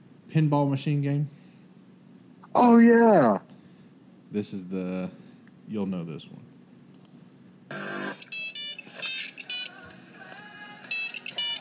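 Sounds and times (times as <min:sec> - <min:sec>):
speech: 0:00.3 - 0:01.4, 0:02.6 - 0:03.5, 0:04.3 - 0:06.5
phone ringtone with short repeated beeping notes: 0:07.8 - 0:09.8, 0:10.9 - 0:11.6.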